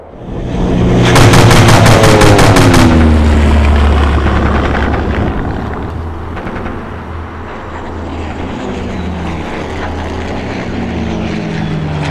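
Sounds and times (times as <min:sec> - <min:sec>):
propeller seaplane engine droning during a dogfight: 0:00.0 - 0:12.0
aircraft machine-gun fire during a seaplane dogfight: 0:01.0 - 0:04.9.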